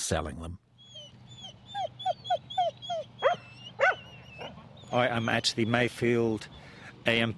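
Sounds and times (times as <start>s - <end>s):
speech: 0.1s - 0.6s, 4.9s - 7.3s
farm dogs yelping and whimpering at showgrounds: 0.8s - 5.8s.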